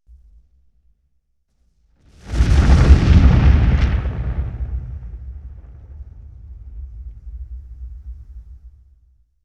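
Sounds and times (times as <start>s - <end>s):
explosion: 2.1s - 9.1s.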